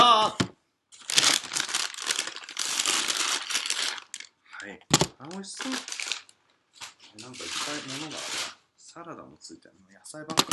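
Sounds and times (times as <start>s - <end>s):
plastic packaging crinkling while being handled: 1.0s - 4.4s, 5.2s - 8.6s
speech: 4.6s - 6.0s, 7.1s - 10.5s.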